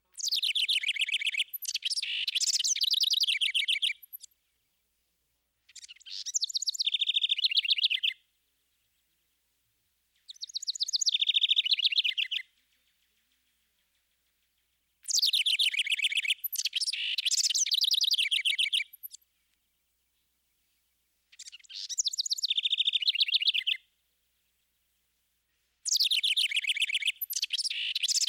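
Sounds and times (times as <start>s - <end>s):
house wren singing rising and cascading phrases: 0.1s - 4.4s, 5.7s - 8.2s, 10.2s - 13.9s, 15.0s - 19.3s, 21.3s - 23.8s, 25.9s - 28.2s.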